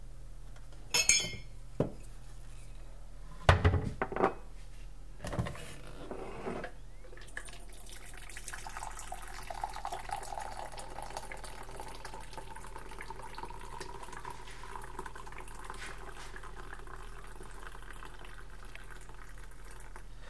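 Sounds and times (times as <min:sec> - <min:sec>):
low hum: 0:00.0 - 0:20.2
coffee pouring into a big cup: 0:07.1 - 0:20.1.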